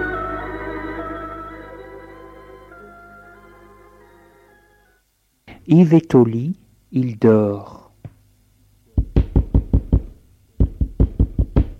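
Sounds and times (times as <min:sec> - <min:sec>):
speech: 0:05.6 - 0:07.8
firm knocking on a door: 0:09.0 - 0:11.7.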